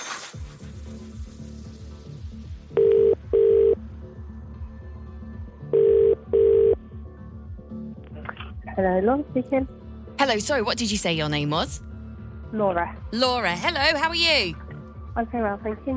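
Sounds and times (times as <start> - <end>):
phone line ringback tones: 2.8 - 3.8, 5.8 - 6.8
speech: 8.8 - 11.9, 12.5 - 14.6, 15.2 - 15.9.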